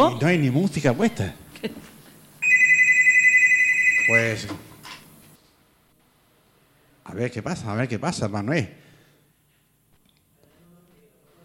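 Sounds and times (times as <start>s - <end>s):
speech: 0.0s - 1.8s, 4.1s - 4.7s, 7.1s - 8.8s
telephone ringing: 2.4s - 4.5s.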